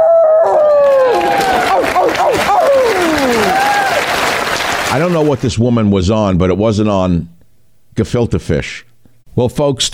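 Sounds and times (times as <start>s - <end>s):
several people howling like wolves at an awards ceremony: 0.0s - 4.0s
cheering: 0.0s - 5.2s
applause: 0.8s - 5.4s
speech: 4.9s - 7.4s, 8.0s - 9.9s.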